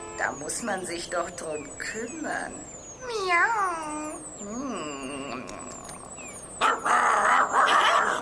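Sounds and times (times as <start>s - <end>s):
high chirping sounds overhead: 0.0s - 8.2s
speech: 0.2s - 5.9s
dog giving short yelping barks: 6.6s - 8.2s.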